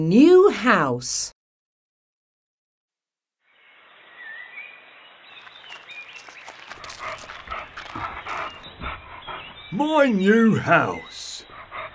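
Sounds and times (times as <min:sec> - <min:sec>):
speech: 0:00.0 - 0:01.3, 0:09.7 - 0:11.3
dog panting: 0:05.8 - 0:11.9.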